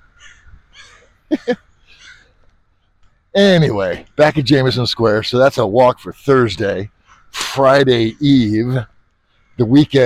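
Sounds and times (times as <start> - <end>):
crows cawing: 0.0 - 2.5, 6.9 - 7.4, 9.1 - 10.0
faint outdoor ambience: 0.0 - 10.0
speech: 1.5 - 1.7, 3.4 - 7.0, 7.6 - 8.9, 9.6 - 10.0.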